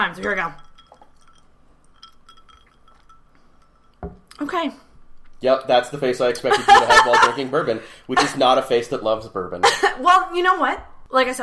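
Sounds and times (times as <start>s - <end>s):
speech: 0.0s - 0.6s, 4.4s - 11.4s
glasses clinking in a toast: 0.0s - 4.5s
laughter: 6.4s - 8.5s.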